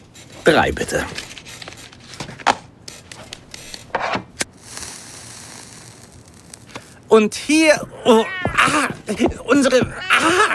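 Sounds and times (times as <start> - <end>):
speech: 0.4 - 1.2, 7.1 - 10.5
cat meowing: 8.0 - 9.0, 9.6 - 10.5.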